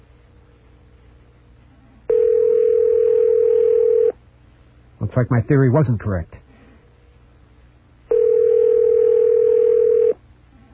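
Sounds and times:
telephone line ringing tone: 2.1 - 4.2, 8.1 - 10.2
speech: 5.2 - 6.4.

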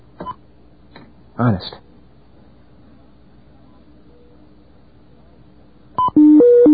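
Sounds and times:
speech: 1.4 - 1.8
telephone touch-tone beeps: 6.0 - 6.7.

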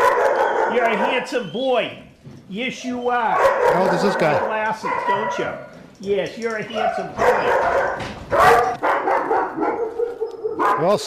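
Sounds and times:
German Shepherd dogs barking: 0.0 - 1.5, 3.2 - 5.8, 6.6 - 11.0
speech: 0.8 - 8.7, 10.8 - 11.0.

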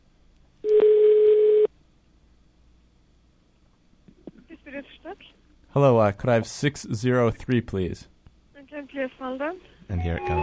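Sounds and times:
telephone line ringing through the earpiece: 0.7 - 1.7
speech: 5.1 - 8.1, 9.3 - 10.4.

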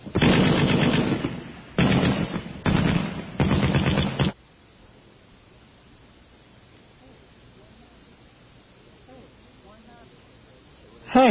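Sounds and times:
sci-fi starship launching photon torpedoes: 0.0 - 4.4.

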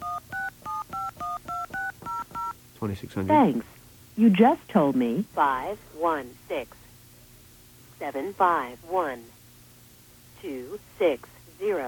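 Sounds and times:
touch-tone keypad beeps dialing a phone number: 0.0 - 2.6
speech: 2.8 - 6.8, 8.0 - 9.4, 10.4 - 11.8.

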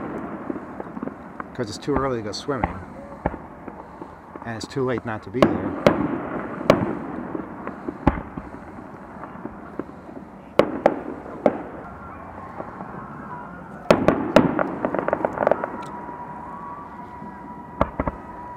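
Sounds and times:
fireworks cracking and popping at a beach carnival: 0.0 - 18.5
speech: 1.6 - 2.9, 4.5 - 6.0.

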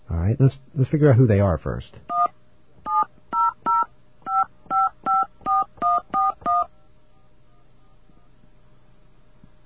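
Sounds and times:
speech: 0.3 - 2.2
touch-tone beeps of a phone number being dialed: 2.9 - 6.7.

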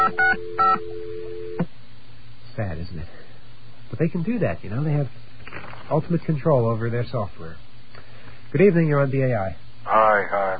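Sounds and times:
steady landline dial tone: 0.0 - 1.7
speech: 2.8 - 3.3, 3.9 - 7.6, 8.5 - 10.5.

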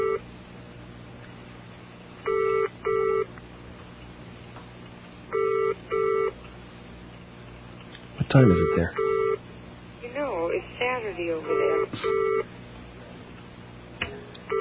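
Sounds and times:
low hum: 0.0 - 14.6
telephone ringing: 2.3 - 3.2, 5.3 - 6.3, 8.5 - 9.4, 11.4 - 12.4
speech: 8.3 - 9.2, 11.0 - 12.6.

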